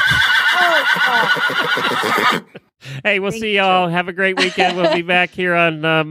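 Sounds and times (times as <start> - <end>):
horse neighing: 0.0 - 2.5
laughter: 0.6 - 3.6, 4.4 - 5.4
speech: 1.0 - 6.0.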